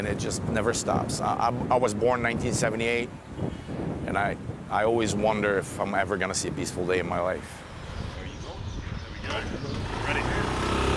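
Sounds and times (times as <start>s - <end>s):
speech: 0.0s - 7.7s
motorbike engine rumbling as it rides along: 7.6s - 10.9s.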